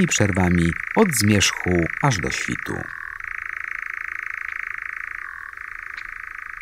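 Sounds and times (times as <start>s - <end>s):
speech: 0.0s - 3.0s
European nightjar churring trill: 0.0s - 6.6s.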